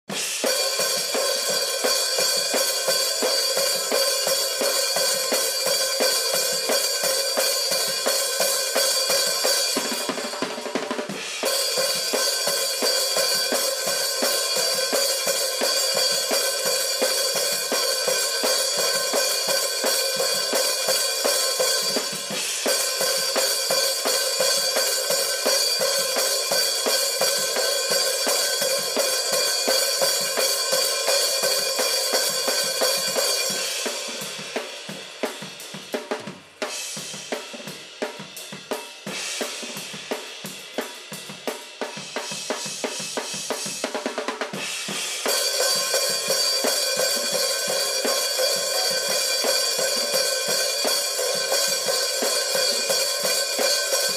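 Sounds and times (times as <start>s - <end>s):
processed hi-hat: 0.1s - 54.1s.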